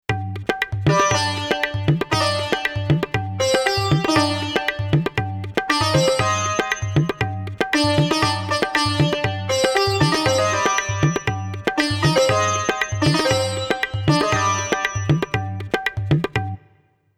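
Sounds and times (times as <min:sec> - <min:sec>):
tabla on Roland XP-80 synthesizer: 0:00.0 - 0:16.9
sitar on Roland XP-80 synthesizer: 0:00.8 - 0:16.8.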